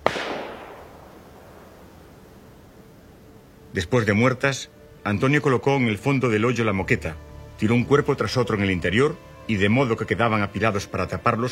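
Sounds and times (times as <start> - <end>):
single sharp pistol shot with long decay: 0.0 - 2.5
speech: 3.7 - 11.5.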